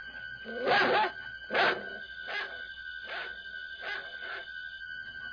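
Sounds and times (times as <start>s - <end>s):
dog barking in sharp loud yaps: 0.5s - 4.5s.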